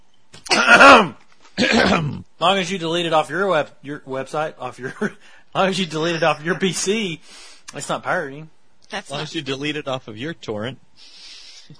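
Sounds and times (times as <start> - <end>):
person clearing throat: 0.4 - 2.3
speech: 0.7 - 11.7.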